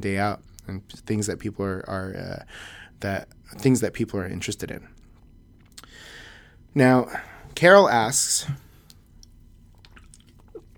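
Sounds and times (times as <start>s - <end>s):
speech: 0.0s - 5.0s, 6.8s - 8.6s
low hum: 0.0s - 10.7s
small wet mouth clicks: 5.7s - 5.9s, 9.2s - 10.7s
person sipping a drink: 9.7s - 10.7s.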